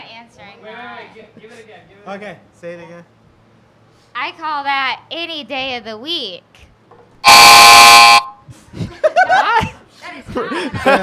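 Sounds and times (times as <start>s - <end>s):
speech: 0.4s - 3.2s, 4.2s - 6.6s, 10.3s - 11.0s
air horn blast used as a game buzzer: 7.2s - 8.4s
people laughing: 8.7s - 11.0s.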